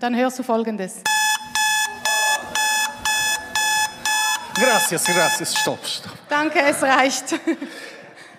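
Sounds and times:
speech: 0.0s - 1.3s, 4.6s - 8.0s
alarm clock beeping: 1.0s - 5.9s
laughter: 4.5s - 5.8s, 6.5s - 8.3s.

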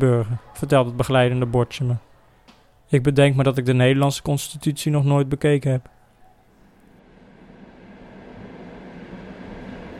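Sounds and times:
speech: 0.0s - 2.1s, 2.9s - 6.0s
train rolling along the rails heard from inside the carriage: 7.7s - 9.9s.

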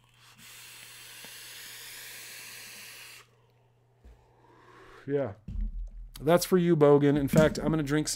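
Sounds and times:
vape device hiss and exhale: 0.2s - 3.3s
speech: 5.0s - 5.5s, 6.2s - 8.1s.

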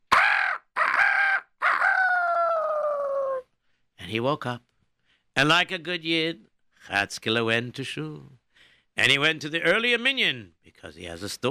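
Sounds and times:
rooster crowing in the morning: 0.1s - 3.4s
speech: 4.1s - 4.7s, 5.4s - 8.4s, 9.0s - 11.4s.

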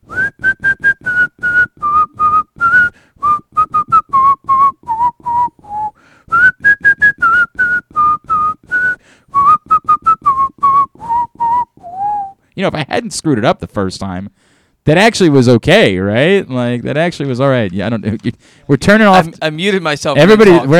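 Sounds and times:
person whistling a quick bouncy tune: 0.0s - 12.4s
speech: 12.6s - 20.7s.

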